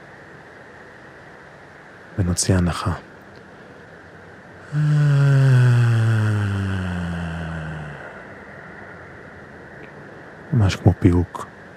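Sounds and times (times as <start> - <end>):
speech: 2.2 - 3.1, 4.7 - 5.0, 10.7 - 11.5
long low humming exhale after a held breath: 4.6 - 9.0.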